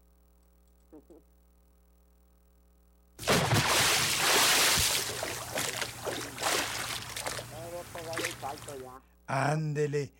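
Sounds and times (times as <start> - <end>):
speech: 0.9 - 1.4, 8.7 - 10.1
bucket of water dumped and splashing: 3.2 - 8.8.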